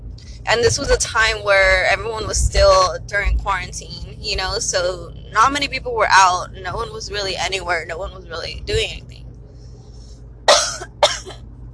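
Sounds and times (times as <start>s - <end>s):
low steady hum: 0.0s - 11.7s
speech: 0.4s - 9.2s
person coughing: 10.5s - 11.4s.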